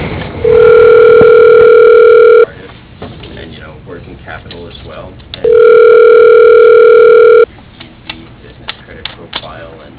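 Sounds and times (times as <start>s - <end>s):
telephone dial tone while a call is being dialled: 0.5s - 2.5s, 5.5s - 7.5s.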